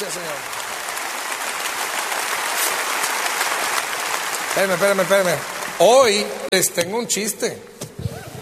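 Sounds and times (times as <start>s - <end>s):
large audience applauding: 0.0s - 6.5s
speech: 4.6s - 7.8s.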